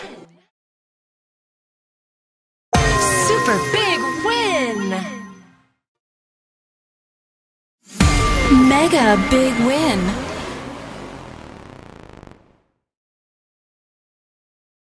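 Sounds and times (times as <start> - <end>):
big win sound: 2.8 - 5.6, 8.0 - 10.2.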